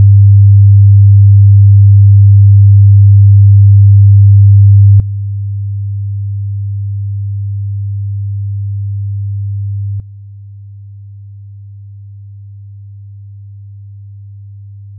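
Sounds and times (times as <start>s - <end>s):
comb filtered sine tone at 100Hz: 0.0s - 14.9s.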